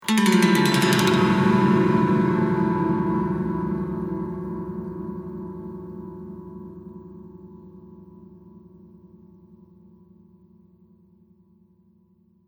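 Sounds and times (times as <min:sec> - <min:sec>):
spooky strings: 0:00.0 - 0:06.4
ghostly piano strings transition: 0:00.0 - 0:07.4.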